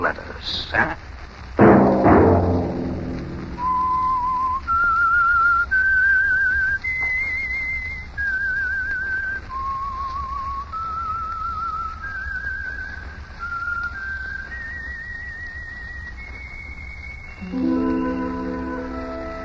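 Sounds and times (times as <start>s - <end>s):
speech: 0.0s - 1.1s
short burst of low instrumental sound: 1.6s - 4.4s, 17.4s - 19.4s
whistled signature theme of a radio program: 3.5s - 19.4s.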